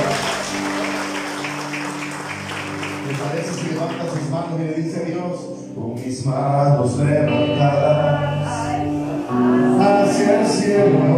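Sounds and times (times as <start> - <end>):
audience applauding: 0.0 - 4.6
speech: 3.1 - 8.6, 9.4 - 11.1.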